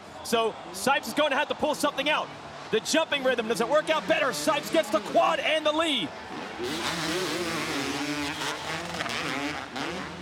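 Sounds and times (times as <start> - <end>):
speech: 0.3 - 7.3
two-stroke motocross bikes revving hard on a race track: 3.1 - 10.2.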